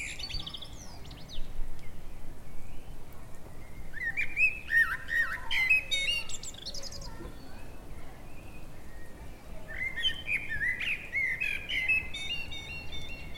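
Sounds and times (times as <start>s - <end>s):
common blackbird Turdus merula singing fluty warbled phrases: 0.0s - 13.3s.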